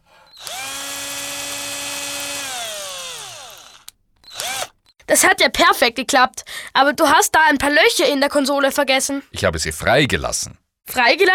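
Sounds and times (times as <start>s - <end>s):
cordless drill driving screws to fix shelf brackets to a wall: 0.3s - 4.9s
speech: 5.1s - 11.3s.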